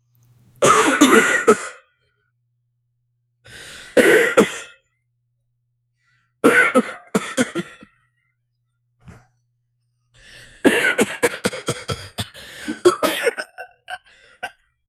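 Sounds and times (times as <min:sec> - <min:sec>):
man coughing: 0:00.6 - 0:01.9, 0:04.0 - 0:04.8, 0:06.4 - 0:08.0, 0:10.6 - 0:14.6.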